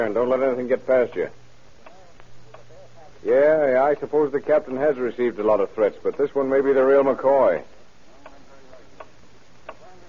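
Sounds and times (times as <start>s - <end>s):
speech: 0.0s - 1.4s, 3.2s - 7.8s
clock ticking faintly: 6.0s - 6.4s, 9.0s - 9.8s.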